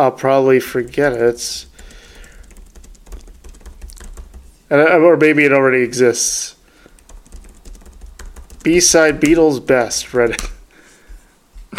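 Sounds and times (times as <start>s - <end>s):
speech: 0.0s - 1.7s, 4.7s - 6.6s, 8.6s - 10.6s
low steady noise: 0.0s - 11.7s
typing on a computer keyboard to write a note: 0.7s - 4.6s, 6.8s - 9.5s.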